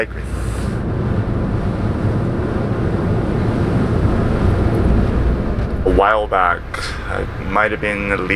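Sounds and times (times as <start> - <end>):
speech: 0.0 - 0.5, 6.0 - 8.3
wind rushing aboard a bay ferry: 0.2 - 8.0.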